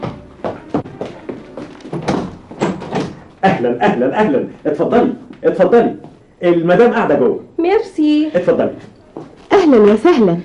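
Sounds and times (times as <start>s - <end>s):
door being opened in a radio drama: 1.9s - 3.3s
speech: 3.4s - 8.9s, 9.7s - 10.4s.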